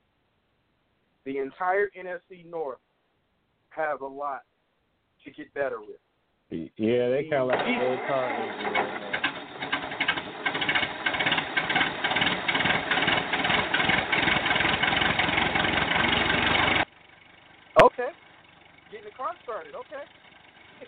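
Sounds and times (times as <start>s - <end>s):
speech: 1.2s - 2.9s, 3.7s - 4.5s, 5.2s - 9.1s, 18.9s - 20.8s
old car engine cranking, struggling to turn over: 7.4s - 20.8s.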